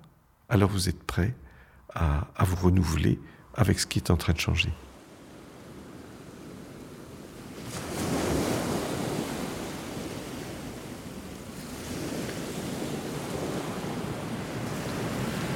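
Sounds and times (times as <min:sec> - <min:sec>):
speech: 0:00.5 - 0:04.9
sea waves washing near buildings: 0:04.8 - 0:15.5
wind-like hiss: 0:04.9 - 0:15.5.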